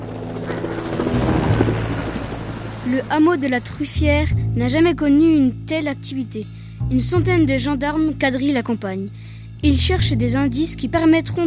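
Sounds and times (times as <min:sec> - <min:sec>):
helicopter flying over countryside during a search: 0:00.0 - 0:04.5
speech: 0:02.9 - 0:11.4.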